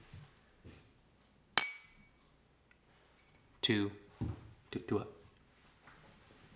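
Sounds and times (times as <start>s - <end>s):
beer glasses or cans clinking together in a toast: 1.6s - 2.2s
speech: 3.7s - 5.2s.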